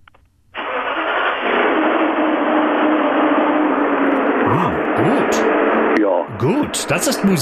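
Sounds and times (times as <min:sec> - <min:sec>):
van engine starting and idling: 0:00.6 - 0:05.7
speech: 0:06.8 - 0:07.3.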